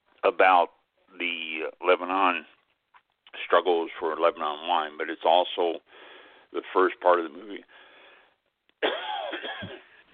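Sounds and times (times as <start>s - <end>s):
speech: 0.3s - 2.6s, 3.5s - 7.8s, 8.8s - 9.5s
person coughing and clearing throat: 8.8s - 10.0s.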